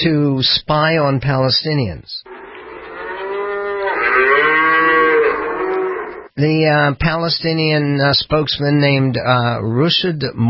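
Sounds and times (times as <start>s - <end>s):
speech: 0.0s - 2.3s, 4.2s - 4.6s, 6.4s - 10.4s
cow mooing: 2.3s - 6.3s.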